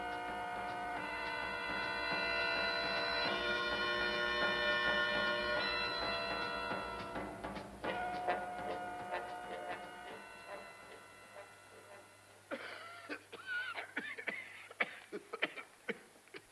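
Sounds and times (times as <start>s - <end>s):
faint hum: 0.0s - 16.0s
man coughing: 12.5s - 16.1s.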